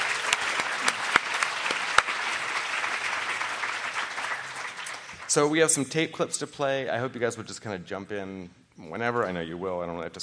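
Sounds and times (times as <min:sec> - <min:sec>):
audience applause for an ethics panel: 0:00.0 - 0:05.7
speech: 0:05.3 - 0:10.2.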